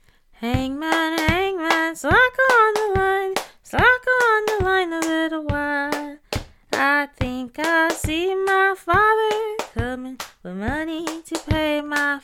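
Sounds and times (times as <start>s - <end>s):
body percussion: 0.5s - 12.2s.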